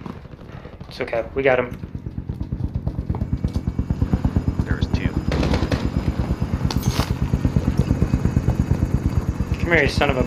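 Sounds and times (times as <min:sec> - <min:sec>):
machine-gun fire in a video game firefight: 0:00.0 - 0:08.7
speech: 0:00.9 - 0:01.9, 0:09.7 - 0:10.2
sharp gunshot cracks: 0:05.3 - 0:06.0.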